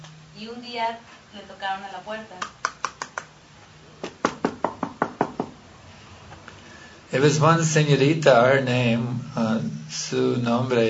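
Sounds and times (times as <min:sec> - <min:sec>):
speech: 0:00.4 - 0:02.6, 0:07.1 - 0:10.8
sharp wooden raps knocking on a door: 0:04.1 - 0:05.6.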